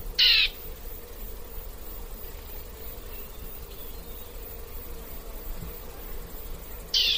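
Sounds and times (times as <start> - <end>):
bird giving short harsh raspy calls: 0.2 - 0.5, 6.9 - 7.1.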